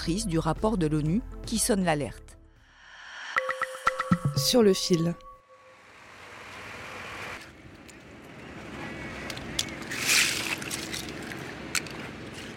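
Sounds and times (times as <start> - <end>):
speech: 0.0 - 2.2, 4.4 - 5.3
wind: 4.7 - 12.5
clam fishing boats idling with a steady low engine rumble: 6.0 - 12.5
sloshing water in the Po delta harbour: 9.8 - 12.5.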